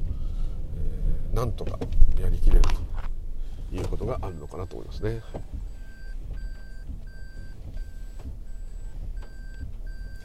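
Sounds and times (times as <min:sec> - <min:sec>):
car engine rumbling while maneuvering aside on a narrow winding single-lane road: 0:00.0 - 0:10.2
speech: 0:01.4 - 0:03.1, 0:03.7 - 0:05.7.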